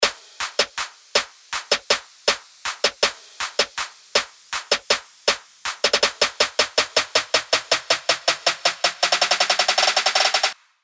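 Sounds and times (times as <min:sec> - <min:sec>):
trap drum fill: 0:00.0 - 0:10.6.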